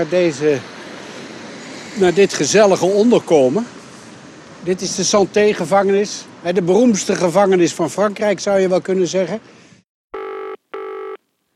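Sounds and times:
speech: 0.0s - 0.7s, 2.0s - 3.8s, 4.6s - 9.6s
old-style telephone ringing: 10.2s - 11.2s.

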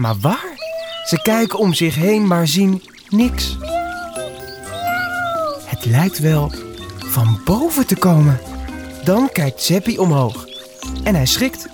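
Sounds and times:
speech: 0.0s - 3.7s, 5.8s - 11.7s
cat meowing pitifully high up in a tall tree: 0.5s - 1.6s, 3.6s - 6.2s.

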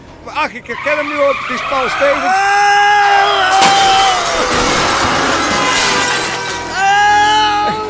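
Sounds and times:
speech: 0.3s - 2.6s
high screech-like wailing tones: 0.8s - 7.8s
car crash: 1.2s - 7.6s
glass shattering in car crash: 3.1s - 7.5s.

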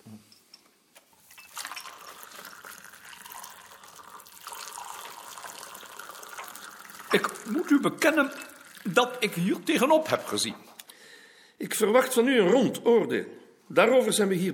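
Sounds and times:
coffee being poured into a cup: 1.3s - 10.4s
speech: 7.1s - 10.7s, 11.6s - 14.5s.

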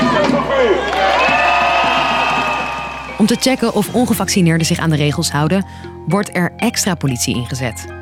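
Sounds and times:
hundreds of angry protesters cheering and shouting in the streets: 0.0s - 3.9s
speech: 3.2s - 7.9s.

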